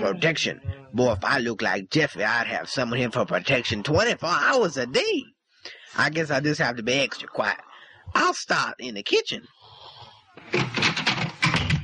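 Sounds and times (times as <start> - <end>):
speech: 0.0 - 9.6, 10.4 - 11.0
door banging shut in a house: 10.5 - 11.8.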